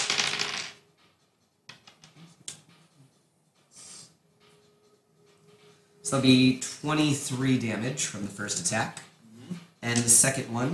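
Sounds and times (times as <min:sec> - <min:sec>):
dice clattering as someone rummages through a pile: 0:00.0 - 0:00.8
speech: 0:06.1 - 0:09.1, 0:09.9 - 0:10.7.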